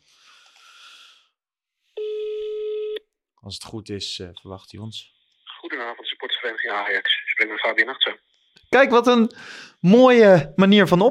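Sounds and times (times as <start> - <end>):
electronic telephone ringing tone: 2.0 - 3.0
speech: 3.4 - 11.0.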